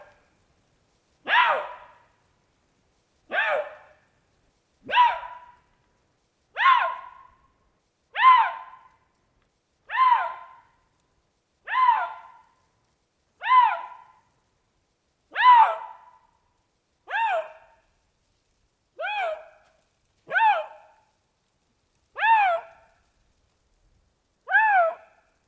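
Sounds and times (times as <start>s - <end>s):
Eurasian lynx giving tonal harmonic yowls in the Jura: 1.2s - 2.0s, 3.3s - 4.0s, 4.8s - 5.6s, 6.6s - 7.3s, 8.1s - 8.9s, 9.9s - 10.7s, 11.6s - 12.5s, 13.4s - 14.2s, 15.3s - 16.2s, 17.1s - 17.8s, 19.0s - 21.0s, 22.1s - 22.9s, 24.4s - 25.2s.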